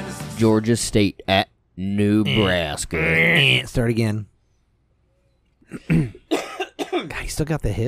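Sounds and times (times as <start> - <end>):
speech: 0.4 - 4.3, 5.7 - 7.8
throaty cough: 5.7 - 7.2.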